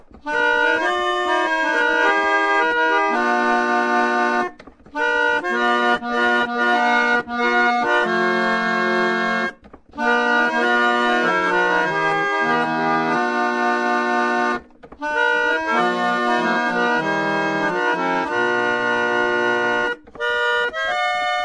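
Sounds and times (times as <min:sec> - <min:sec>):
roller organ: 0:00.0 - 0:21.4.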